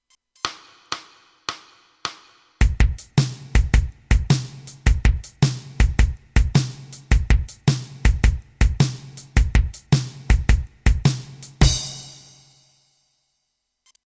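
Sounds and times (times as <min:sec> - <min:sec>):
blues shuffle music: 0:00.4 - 0:12.4.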